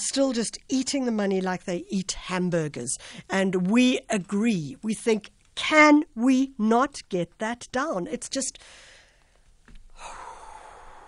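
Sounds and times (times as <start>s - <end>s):
speech: 0.1s - 8.9s
person drawing a deep breath: 8.6s - 11.0s.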